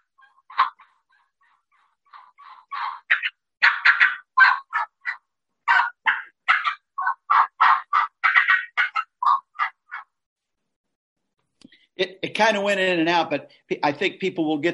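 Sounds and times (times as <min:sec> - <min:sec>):
turkey call imitating excited hen yelps: 0:00.0 - 0:10.2
speech: 0:12.3 - 0:14.7.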